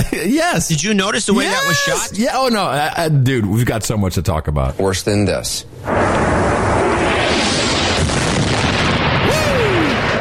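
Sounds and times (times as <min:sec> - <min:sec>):
speech: 0:00.2 - 0:06.5
outgoing artillery rocket fire during shelling: 0:05.8 - 0:10.1.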